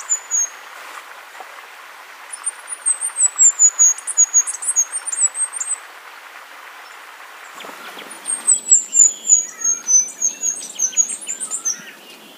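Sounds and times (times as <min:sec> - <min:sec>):
faint bird chirps: 0:00.0 - 0:00.6, 0:02.3 - 0:05.8, 0:06.8 - 0:12.3
bluish flowerpiercer singing very high thin twittering phrases: 0:00.0 - 0:00.7, 0:02.3 - 0:05.8, 0:06.8 - 0:12.3
background hiss: 0:00.0 - 0:12.3.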